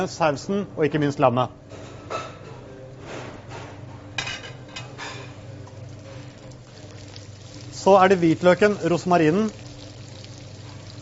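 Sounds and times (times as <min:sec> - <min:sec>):
speech: 0:00.0 - 0:02.2, 0:07.9 - 0:09.6
low constant hum: 0:00.0 - 0:11.0
vegetables sizzling in olive oil in a hot pot: 0:05.7 - 0:11.0.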